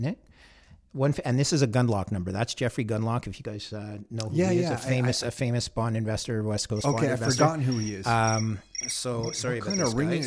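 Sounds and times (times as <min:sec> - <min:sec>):
speech: 0:00.0 - 0:00.2, 0:00.9 - 0:10.2
phone ringtone chirping: 0:06.8 - 0:10.2.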